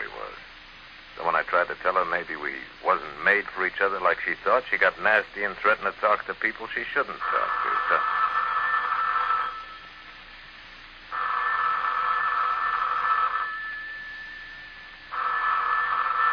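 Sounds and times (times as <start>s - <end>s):
speech: 1.5s - 8.2s
telephone ringing: 7.2s - 10.1s, 11.1s - 16.3s.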